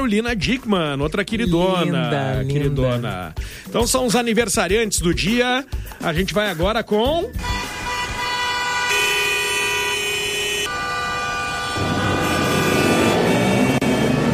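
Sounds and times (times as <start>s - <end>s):
speech: 0.0s - 7.7s
car horns blaring in busy street traffic: 7.3s - 14.3s
siren-like tone: 9.8s - 14.3s.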